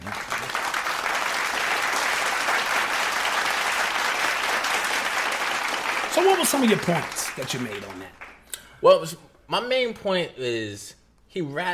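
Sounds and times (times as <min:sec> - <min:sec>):
applause from many hands: 0:00.0 - 0:08.5
speech: 0:06.2 - 0:08.2, 0:08.8 - 0:11.7.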